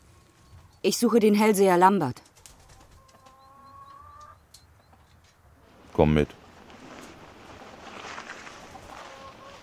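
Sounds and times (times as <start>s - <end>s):
speech: 0.8s - 2.3s, 6.0s - 6.4s
chickens clucking in a stall with nests: 2.4s - 5.2s, 7.0s - 9.6s.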